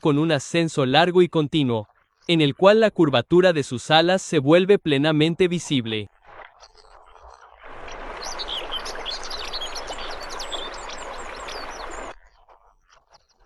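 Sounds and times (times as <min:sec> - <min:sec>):
speech: 0:00.0 - 0:06.8
Eurasian curlew chirps and whistles over marshy wetland: 0:08.2 - 0:12.2.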